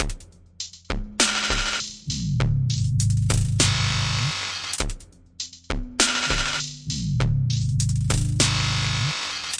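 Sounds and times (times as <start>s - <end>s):
glitch hop drum loop at 50 bpm: 0.0s - 9.5s.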